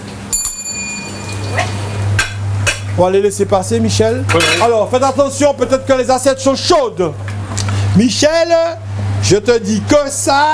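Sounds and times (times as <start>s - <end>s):
low steady hum: 0.0s - 10.5s
single bell ringing with a bright metallic tone: 0.3s - 1.9s
speech: 3.0s - 7.3s, 8.0s - 10.5s.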